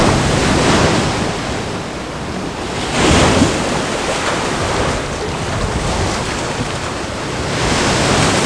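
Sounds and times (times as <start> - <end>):
ocean waves around a galleon: 0.0 - 8.4.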